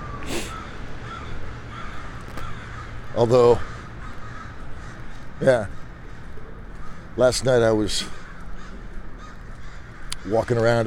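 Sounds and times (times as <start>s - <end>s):
steady outdoor hiss: 0.0s - 2.8s
crows cawing: 0.0s - 10.8s
speech: 3.2s - 3.7s, 5.4s - 5.8s, 7.2s - 8.2s, 10.2s - 10.8s.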